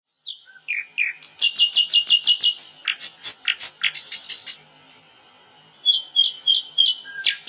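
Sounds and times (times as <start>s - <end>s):
bird singing high notes and buzzy phrases: 0.1s - 5.0s, 5.6s - 7.4s
bird sharp chips: 1.1s - 4.6s.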